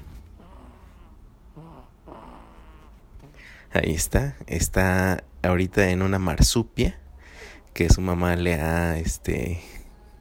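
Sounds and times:
baby snoring softly in a woven fabric wrap carrier: 0.3s - 3.0s
speech: 3.7s - 7.0s, 7.8s - 9.8s.

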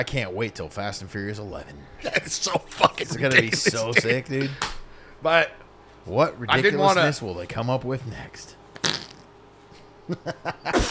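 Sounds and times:
speech: 0.0s - 8.6s, 10.1s - 10.8s
whoopee cushion fart noise: 8.8s - 9.4s.

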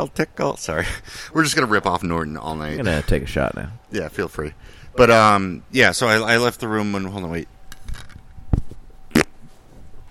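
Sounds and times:
speech: 0.0s - 7.5s
low rumbling fart blown into a microphone: 9.1s - 9.5s.

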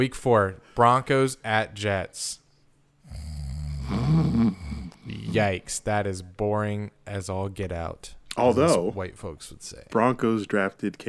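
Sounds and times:
speech: 0.0s - 2.4s, 3.9s - 11.0s
person snoring: 3.0s - 5.5s.

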